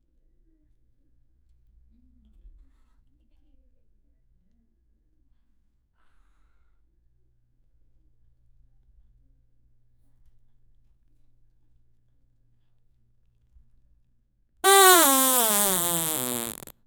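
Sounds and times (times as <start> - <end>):
burp: 14.6 - 16.7
woman farting: 14.6 - 16.7.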